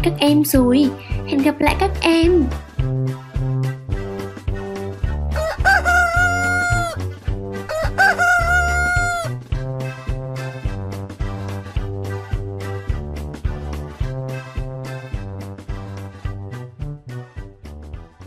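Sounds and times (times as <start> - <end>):
speech: 0.0 - 3.2
bouncy steady-beat instrumental music: 0.0 - 18.2
rooster crowing: 5.4 - 7.0, 7.7 - 9.4.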